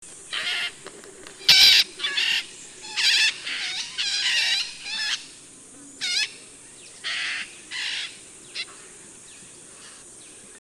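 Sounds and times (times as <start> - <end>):
long-tailed parakeet calling: 1.4 - 5.4, 6.0 - 6.4, 7.0 - 8.7.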